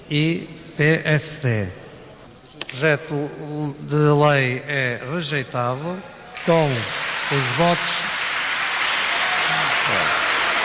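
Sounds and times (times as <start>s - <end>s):
speech: 0.1s - 1.8s, 2.7s - 8.1s
large crowd applauding in parliament chamber after vote: 6.4s - 10.6s.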